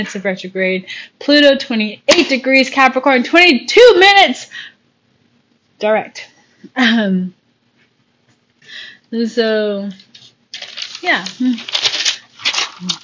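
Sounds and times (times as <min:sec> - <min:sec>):
speech: 0:00.0 - 0:04.7, 0:05.8 - 0:07.4, 0:08.7 - 0:10.1, 0:11.0 - 0:11.9, 0:12.8 - 0:13.0
paper page turning: 0:10.0 - 0:13.0.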